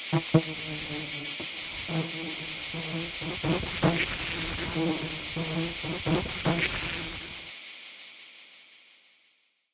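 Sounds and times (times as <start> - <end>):
insects buzzing: 0.1 - 7.5.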